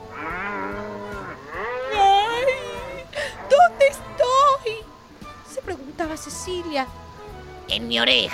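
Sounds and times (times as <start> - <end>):
cow mooing in long bellows: 0.0 - 4.7
speech: 6.4 - 7.0, 7.7 - 8.3.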